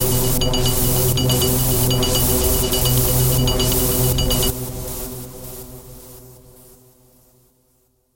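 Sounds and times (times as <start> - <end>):
clatter pad: 0.0 - 4.7.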